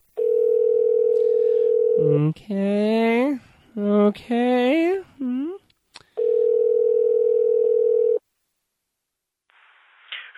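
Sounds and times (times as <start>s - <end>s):
telephone dial tone: 0.2s - 2.1s, 6.2s - 8.2s
speech: 2.2s - 5.1s.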